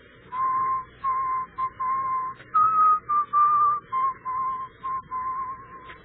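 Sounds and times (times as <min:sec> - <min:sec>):
person whistling a funeral march tune: 0:00.3 - 0:06.0.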